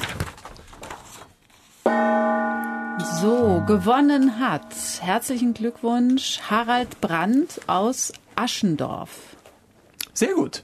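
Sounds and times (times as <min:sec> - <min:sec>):
gong strike: 0:01.9 - 0:06.1
speech: 0:03.0 - 0:09.3, 0:10.2 - 0:10.6.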